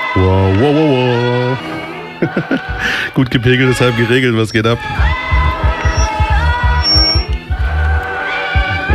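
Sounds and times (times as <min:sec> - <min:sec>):
speech: 0:00.2 - 0:01.0, 0:02.2 - 0:05.2
laughter: 0:02.0 - 0:04.0
loudspeaker feedback whine during a live on-stage radio broadcast: 0:03.4 - 0:07.7, 0:08.6 - 0:08.9
pounding low bass rhythm: 0:04.7 - 0:08.9.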